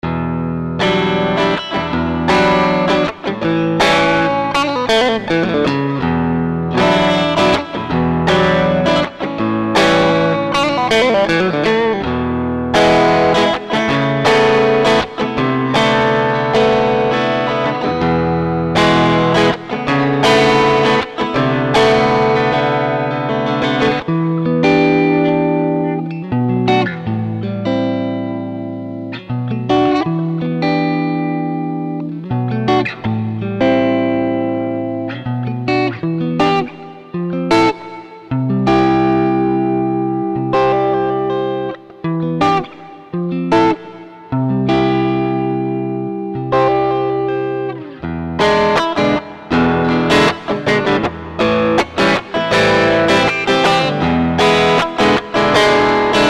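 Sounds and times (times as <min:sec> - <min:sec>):
distorted electric guitars: 0:00.0 - 0:56.2.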